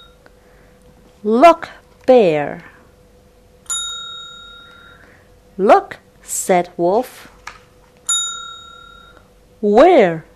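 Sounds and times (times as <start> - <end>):
speech: 1.2 - 2.7, 5.6 - 7.3, 9.6 - 10.3
bright bell ding signalling to turn the page in a read-along story: 3.7 - 5.1, 8.1 - 9.2.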